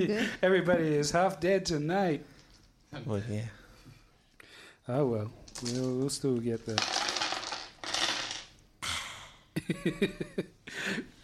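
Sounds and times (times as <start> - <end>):
speech: 0.0 - 2.3, 2.9 - 3.6, 4.8 - 7.0, 9.7 - 11.2
dice clattering and rolling on a hard tabletop: 5.4 - 8.6.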